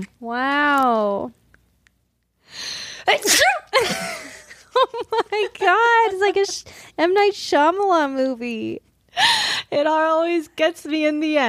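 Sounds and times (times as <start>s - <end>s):
speech: 0.0s - 1.4s, 2.5s - 4.2s, 4.8s - 11.4s
single loud human sneeze: 3.1s - 3.7s.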